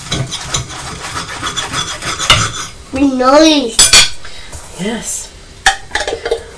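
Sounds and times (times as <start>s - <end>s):
knife scraping through a slice of toast: 0.0s - 2.8s
speech: 3.0s - 3.8s, 4.8s - 5.3s.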